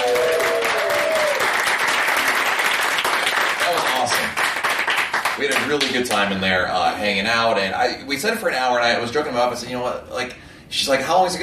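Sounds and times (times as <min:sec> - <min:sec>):
crowd applause: 0:00.0 - 0:05.9
speech: 0:05.4 - 0:11.4.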